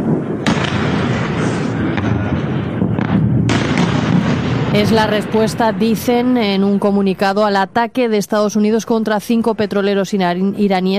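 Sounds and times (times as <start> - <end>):
explosions from a ballistic missile attack on bases: 0.0 - 7.2
continuous low rumble: 0.0 - 8.0
speech: 4.8 - 10.9.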